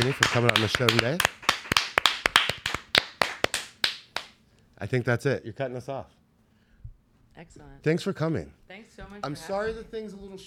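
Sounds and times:
speech: 0.0 - 1.4, 4.8 - 6.2, 7.4 - 10.4
hand claps of a few people: 0.0 - 4.4.

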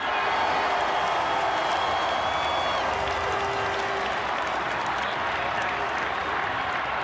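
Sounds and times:
scattered whistles in a parade crowd: 0.0 - 3.0
huge outdoor parade crowd cheering and applauding: 0.0 - 7.0.

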